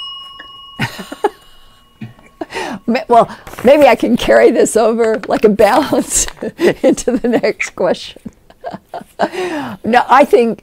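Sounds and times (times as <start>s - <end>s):
four-minute timer bell ringing to end speaking time: 0.0s - 3.4s
speech: 1.0s - 1.3s, 2.9s - 10.6s.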